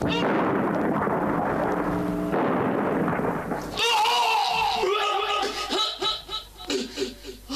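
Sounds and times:
loud rumbling bomb explosion blast: 0:00.0 - 0:04.9
crackling gunfire bursts: 0:00.0 - 0:05.6
noisy commotion: 0:00.0 - 0:05.7
laughter: 0:04.8 - 0:07.4.

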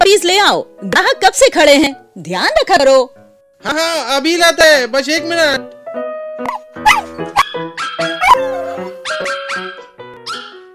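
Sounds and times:
speech: 0:00.1 - 0:06.6
several small puppies whimpering and yipping: 0:06.9 - 0:10.7.

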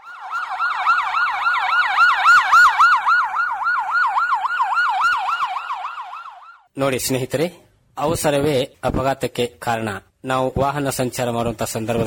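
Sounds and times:
ambulance siren wailing at a road accident scene: 0:00.0 - 0:06.7
speech: 0:06.8 - 0:12.0.

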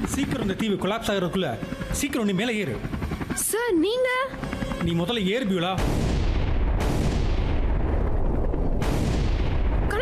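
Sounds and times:
speech: 0:00.0 - 0:06.0
sharp bomb blasts: 0:05.6 - 0:10.0
underground bomb explosions rumbling across an island: 0:05.8 - 0:10.0.

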